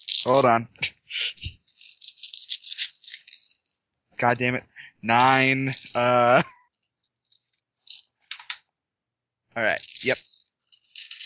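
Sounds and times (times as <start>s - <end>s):
ten-sided dice rolling on a hard tabletop: 0.0s - 0.4s, 1.4s - 3.8s, 7.3s - 8.7s, 9.6s - 11.2s
speech: 0.2s - 1.4s, 4.2s - 6.6s, 9.6s - 10.3s.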